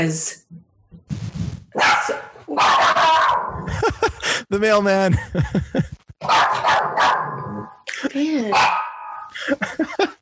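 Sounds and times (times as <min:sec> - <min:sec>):
speech: 0:00.0 - 0:01.2, 0:03.8 - 0:08.8
small dog barking with high-pitched yaps and whiny yelps: 0:01.8 - 0:03.5, 0:06.2 - 0:07.4, 0:08.5 - 0:09.3
laughter: 0:03.6 - 0:04.4, 0:05.1 - 0:06.1, 0:09.3 - 0:10.2.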